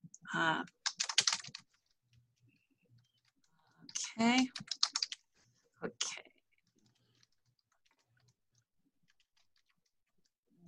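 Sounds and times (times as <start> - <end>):
speech: 0.3 - 0.8, 4.2 - 4.8
typing on a computer keyboard: 0.7 - 2.0, 3.0 - 5.3, 6.6 - 10.6.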